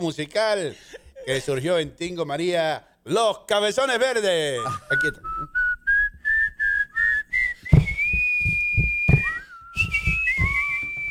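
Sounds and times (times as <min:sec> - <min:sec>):
speech: 0:00.0 - 0:05.3
person whistling a bright melody: 0:04.6 - 0:11.0
soft rhythmic tapping beat: 0:07.6 - 0:11.0.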